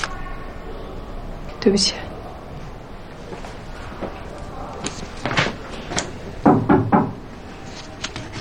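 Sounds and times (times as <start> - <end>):
speech: 1.6 - 2.1
knocking on a door: 6.4 - 7.2.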